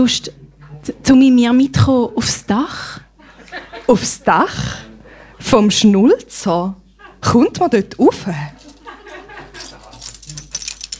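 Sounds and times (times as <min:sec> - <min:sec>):
speech: 0:00.0 - 0:03.0, 0:03.6 - 0:08.6
laughter: 0:03.2 - 0:04.8, 0:06.9 - 0:07.6, 0:08.5 - 0:10.2
bunch of keys jangling: 0:09.5 - 0:10.9.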